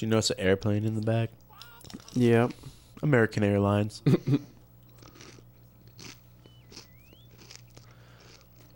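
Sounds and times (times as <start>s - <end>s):
speech: 0.0s - 4.5s
low steady hum: 0.0s - 8.7s
wet chewing and crunching against a microphone: 4.8s - 8.7s.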